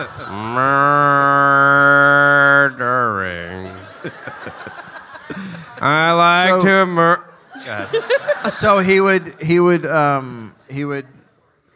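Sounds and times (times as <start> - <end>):
speech: 0.0 - 0.9, 7.9 - 11.2
laughter: 0.0 - 10.5
cow mooing: 0.3 - 2.8.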